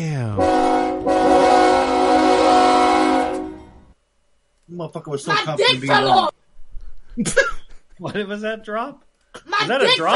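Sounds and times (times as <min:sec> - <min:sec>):
train horn blast: 0:00.4 - 0:03.9
speech: 0:04.8 - 0:06.4, 0:07.2 - 0:10.1.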